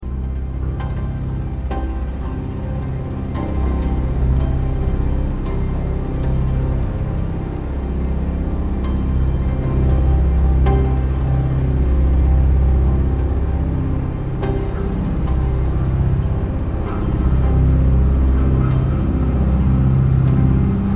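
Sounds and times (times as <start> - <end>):
music: 0.0 - 20.9.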